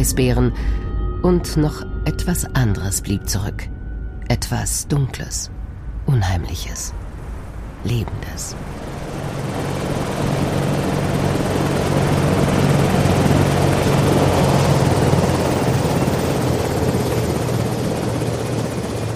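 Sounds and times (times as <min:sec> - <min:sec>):
speech: 0:00.0 - 0:07.0, 0:07.8 - 0:09.0
small helicopter engine whine: 0:00.0 - 0:19.1
rushing wash of air from helicopter rotors: 0:07.0 - 0:14.2
small helicopter rotors thudding while landing on frozen ground: 0:08.1 - 0:19.1.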